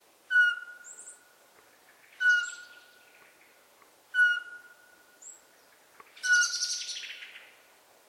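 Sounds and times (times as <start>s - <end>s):
Eurasian pygmy owl calling: 0.3s - 1.3s, 1.9s - 3.4s, 4.1s - 5.4s, 6.1s - 7.4s.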